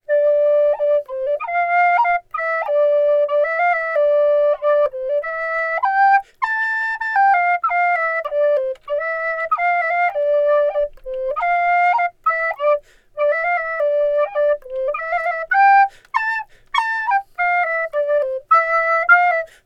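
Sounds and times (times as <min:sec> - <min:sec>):
flute melody from game audio: 0:00.0 - 0:19.6.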